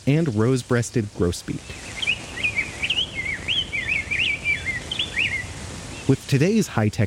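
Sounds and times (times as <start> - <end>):
speech: 0.0 - 2.0, 6.1 - 7.0
crackly hiss and low rumble: 0.0 - 7.0
song sparrow singing: 1.5 - 6.3.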